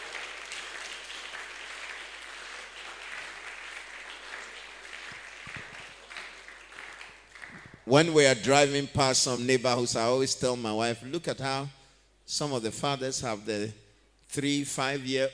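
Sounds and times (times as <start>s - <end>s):
audience clapping: 0.0s - 8.0s
speech: 7.9s - 15.3s.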